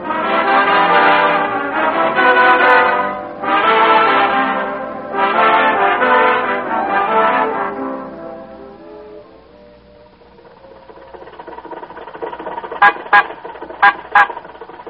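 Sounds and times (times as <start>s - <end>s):
tonal chord: 0.0s - 11.0s
car horn honking at a red light: 0.2s - 7.9s, 12.7s - 14.6s
low engine rumble: 6.3s - 14.8s.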